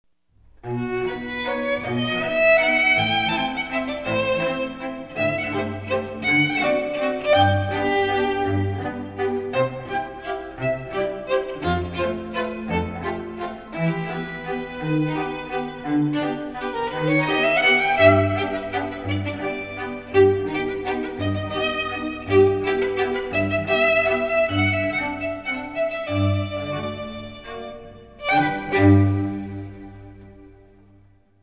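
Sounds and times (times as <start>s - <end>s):
trio of two violins and cello playing: 0.6s - 30.9s.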